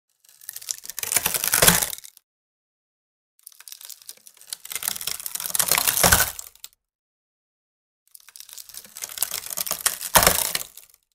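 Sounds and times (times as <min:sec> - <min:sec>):
wood breaking: 0:00.3 - 0:02.1, 0:03.6 - 0:06.5, 0:08.3 - 0:11.0.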